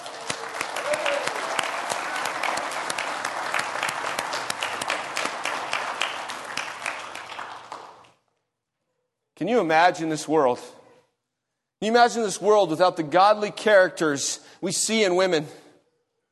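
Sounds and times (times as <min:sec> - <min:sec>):
audience applause in a church: 0:00.0 - 0:08.1
speech: 0:09.4 - 0:10.8, 0:11.8 - 0:15.6.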